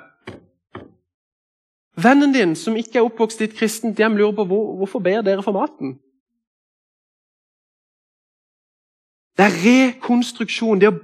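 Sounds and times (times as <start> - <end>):
knocking on a wooden table: 0.2 - 1.0
speech: 2.0 - 6.0, 9.4 - 11.0.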